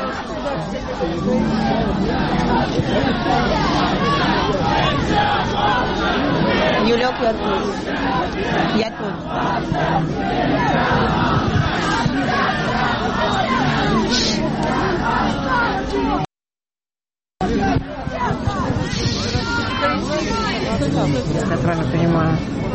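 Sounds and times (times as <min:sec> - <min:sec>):
large protest crowd chanting and shouting: 0:00.0 - 0:16.3, 0:17.4 - 0:22.7
speech: 0:00.1 - 0:16.2, 0:19.9 - 0:22.7.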